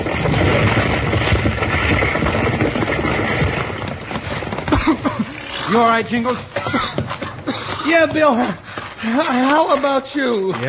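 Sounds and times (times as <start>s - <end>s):
burning livery stable roof timber crashing: 0.0s - 8.5s
crackling flames of a burning livery stable: 0.0s - 10.6s
horses stamping: 0.0s - 10.6s
horses whinnying: 4.4s - 8.6s
speech: 5.7s - 6.9s, 7.9s - 10.6s.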